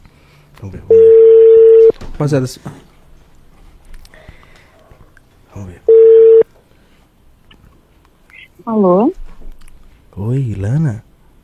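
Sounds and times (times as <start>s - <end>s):
speech: 0.6s - 1.2s, 2.2s - 2.9s
telephone line tone as a call is placed: 0.9s - 1.9s, 5.9s - 6.4s.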